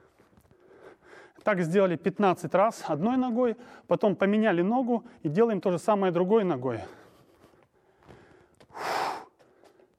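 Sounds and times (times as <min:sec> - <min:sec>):
soft breaths: 0:00.0 - 0:01.4, 0:06.8 - 0:09.9
speech: 0:01.5 - 0:07.0
person exhaling forcefully during a leg exercise: 0:08.7 - 0:09.4.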